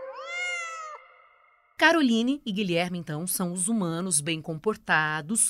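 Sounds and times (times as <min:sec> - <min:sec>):
drawn-out cat meow: 0:00.1 - 0:01.3
speech: 0:01.9 - 0:05.4.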